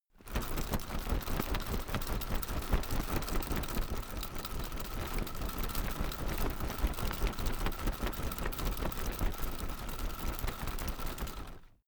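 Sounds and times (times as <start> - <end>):
telescopic umbrella shaking fast and soft: 0.2 - 11.8.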